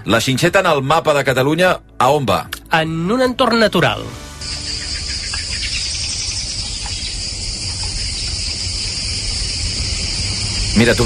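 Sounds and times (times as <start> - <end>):
speech: 0.0 - 4.2, 10.8 - 11.0
crickets chirping at sunset in a natural park: 4.3 - 11.0
faint bird calls: 4.4 - 10.2.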